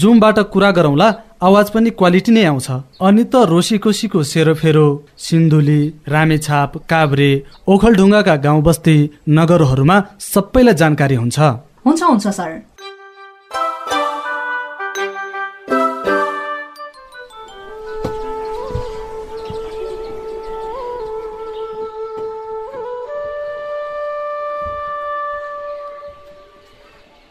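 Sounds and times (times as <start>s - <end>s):
speech: 0.0s - 12.7s
bamboo flute melody: 12.8s - 27.0s.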